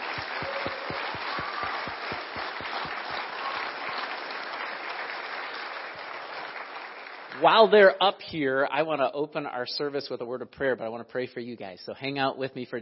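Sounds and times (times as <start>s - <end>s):
church audience applauding graduates during a service: 0.0s - 7.6s
speech: 7.4s - 12.8s.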